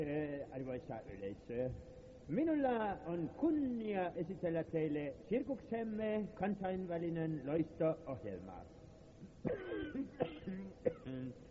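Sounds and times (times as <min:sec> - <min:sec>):
speech: 0:00.0 - 0:11.4
person coughing: 0:09.4 - 0:11.4
raspy voiced throat clearing: 0:09.4 - 0:11.4.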